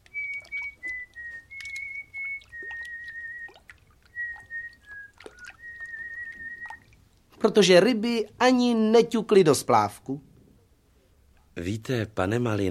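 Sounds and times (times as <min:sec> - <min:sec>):
water trickling and dripping: 0:00.0 - 0:08.4
water birds chirping: 0:00.0 - 0:09.4
young fisherman whistling a tune at the Lipno reservoir: 0:00.1 - 0:03.6, 0:04.2 - 0:06.8
speech: 0:07.4 - 0:10.3, 0:11.6 - 0:12.6.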